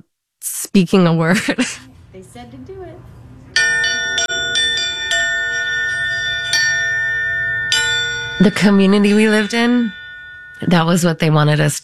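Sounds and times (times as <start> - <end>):
speech: 0.4 - 3.2, 8.4 - 10.0, 10.6 - 11.8
bell ringing with shimmering tones: 3.5 - 11.8.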